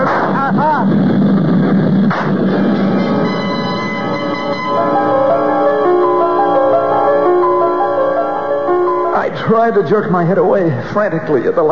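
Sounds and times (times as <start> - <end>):
gunshot: 0.0 - 1.0, 2.0 - 2.6
plane engine droning: 0.3 - 9.4
speech: 9.5 - 11.7.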